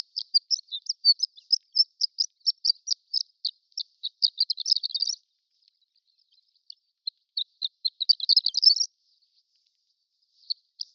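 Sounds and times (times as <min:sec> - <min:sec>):
prairie horned lark twittering: 0:00.0 - 0:05.2, 0:07.1 - 0:08.9.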